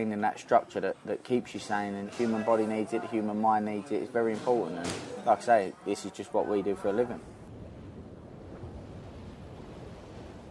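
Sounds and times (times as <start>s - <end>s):
speech: 0.0s - 7.4s
ocean waves breaking on a beach: 5.1s - 10.4s.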